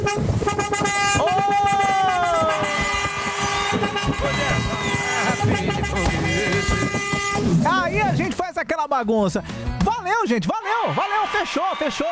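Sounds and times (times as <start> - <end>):
steady traffic noise: 0.0 - 7.6
car horns honking: 0.0 - 7.8
speech: 9.0 - 12.1.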